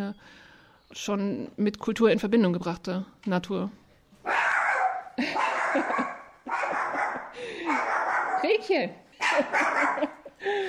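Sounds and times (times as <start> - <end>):
speech: 0.1 - 4.4, 5.2 - 6.1, 8.4 - 10.6
dog barking: 4.2 - 8.6, 9.2 - 10.2.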